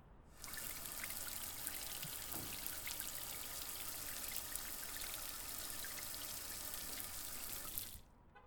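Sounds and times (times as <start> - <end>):
water running from a shower or tap: 0.4 - 8.0.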